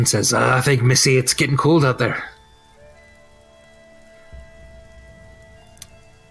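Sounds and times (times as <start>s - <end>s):
speech: 0.0s - 2.4s
rain pattering on a hard surface at night: 0.3s - 6.2s.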